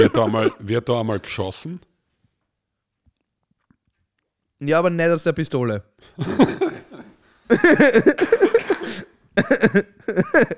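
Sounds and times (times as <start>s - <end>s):
person coughing roughly: 0.0s - 0.7s, 6.2s - 10.5s
speech: 0.1s - 1.9s, 4.6s - 6.8s, 7.5s - 10.5s
person laughing: 6.2s - 10.5s.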